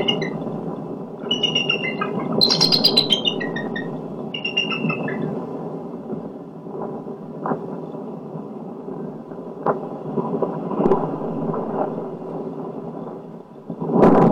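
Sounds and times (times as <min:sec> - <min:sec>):
bald eagle high thin piping chirps: 0:00.0 - 0:05.3
low rumbling background: 0:00.0 - 0:07.6, 0:08.2 - 0:13.7.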